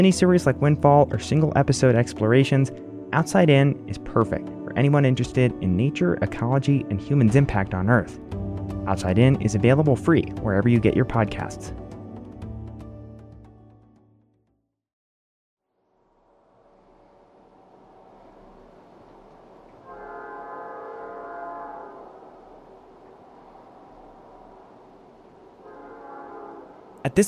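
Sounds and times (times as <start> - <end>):
speech: 0.0 - 11.8, 27.0 - 27.2
sustained tonal blasts over a freight train: 19.8 - 22.2, 25.6 - 26.9.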